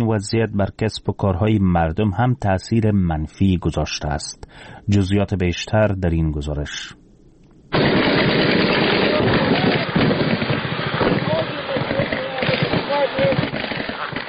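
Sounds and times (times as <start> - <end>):
speech: 0.0 - 7.0
gunfire from light and heavy weapons: 7.7 - 14.2.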